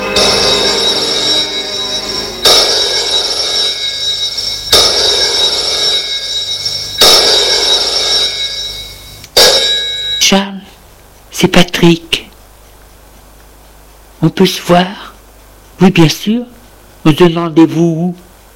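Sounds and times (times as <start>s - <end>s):
telephone ringing: 0.0s - 10.4s
speech: 11.8s - 12.1s, 14.3s - 15.0s, 15.8s - 18.2s.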